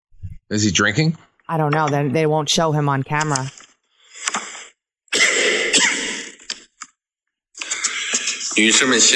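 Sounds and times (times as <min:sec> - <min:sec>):
speech: 0:00.5 - 0:03.6, 0:08.6 - 0:09.1
man coughing violently: 0:05.1 - 0:06.3.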